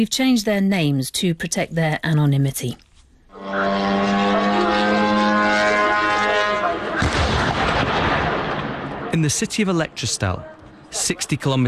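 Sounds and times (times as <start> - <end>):
speech: 0.0 - 2.8, 9.2 - 11.6
Ukrainian drone engine whine with buzzing harmonic drone: 3.3 - 7.2
drone crash and explosions at a warehouse in Elektrostal: 7.0 - 9.6.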